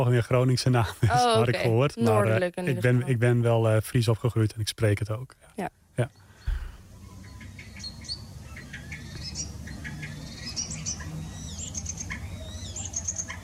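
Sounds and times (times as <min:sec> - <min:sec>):
speech: 0:00.0 - 0:06.2
low steady hum: 0:00.0 - 0:13.4
Common Starling calls: 0:06.2 - 0:13.4.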